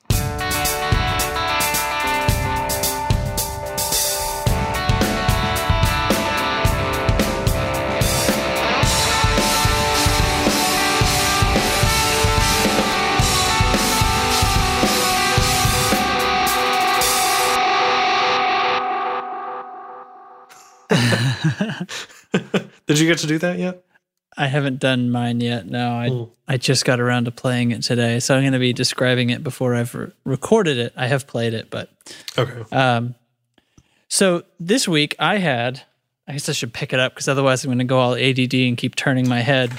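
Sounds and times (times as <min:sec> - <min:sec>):
drums in a delay pedal demo: 0:00.0 - 0:18.1, 0:20.5 - 0:22.8
repeating notes from a delay pedal: 0:00.5 - 0:20.5
laughter: 0:20.9 - 0:23.0
speech: 0:22.9 - 0:33.2, 0:34.1 - 0:39.7.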